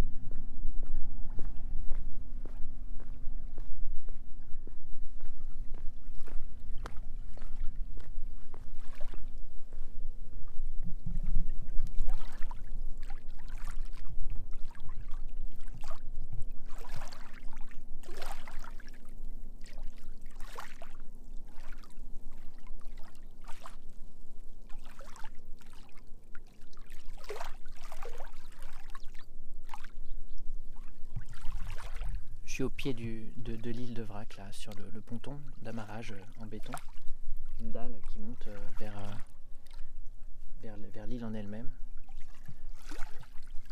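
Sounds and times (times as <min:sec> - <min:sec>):
steady low rumble: 0:00.0 - 0:43.6
water lapping and splashing against rocks at rising tide: 0:06.1 - 0:09.5, 0:10.9 - 0:24.0, 0:24.6 - 0:30.1, 0:30.7 - 0:32.4, 0:34.6 - 0:40.0, 0:42.0 - 0:43.6
speech: 0:32.6 - 0:37.0, 0:37.6 - 0:39.3, 0:40.6 - 0:41.8.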